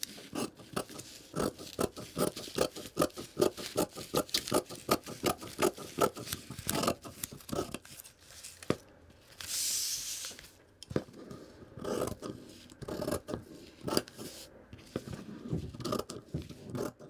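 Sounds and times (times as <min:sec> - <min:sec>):
fabric scissors snipping through cloth: 0:00.0 - 0:07.8, 0:11.8 - 0:14.3, 0:15.0 - 0:17.0.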